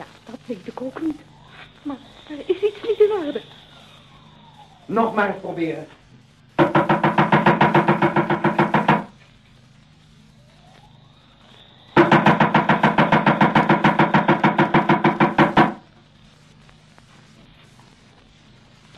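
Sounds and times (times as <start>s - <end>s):
speech: 0.0s - 3.6s, 4.9s - 6.0s
rapid knocking on a heavy wooden door: 6.6s - 9.1s, 12.0s - 15.8s.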